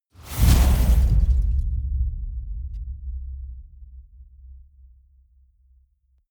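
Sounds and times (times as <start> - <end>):
wind gust hit: 0.2 - 3.0.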